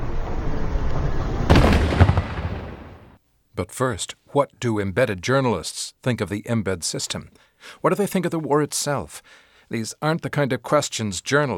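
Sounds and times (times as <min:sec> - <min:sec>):
loud explosion in a war zone: 0:00.0 - 0:03.2
steady rumble: 0:00.0 - 0:03.2
speech: 0:03.6 - 0:11.5.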